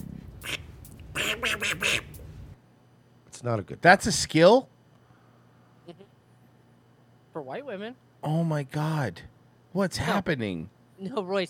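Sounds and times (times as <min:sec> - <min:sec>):
person imitating a duck with nasal raspy quacks: 0:00.0 - 0:02.2
speech: 0:01.3 - 0:02.1, 0:03.4 - 0:04.7, 0:07.4 - 0:11.4.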